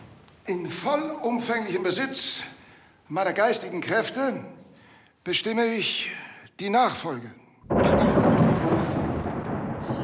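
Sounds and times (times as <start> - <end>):
speech: 0.5 - 4.6, 5.2 - 8.1
loud rumbling thunder: 7.6 - 10.0.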